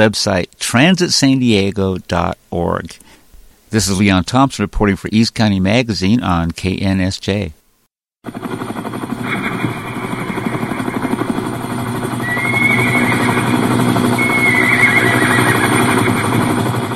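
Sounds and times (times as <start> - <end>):
speech: 0.0 - 7.6, 8.2 - 8.5
helicopter rotor blades thudding: 8.3 - 16.9.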